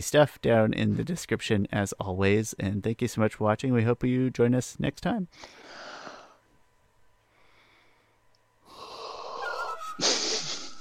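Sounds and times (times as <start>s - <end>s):
speech: 0.0s - 5.7s
man yawning: 8.7s - 10.7s.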